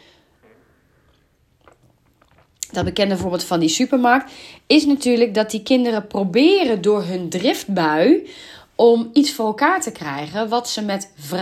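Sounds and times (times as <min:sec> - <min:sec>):
person sipping tea: 0:00.0 - 0:02.8
speech: 0:02.8 - 0:11.3.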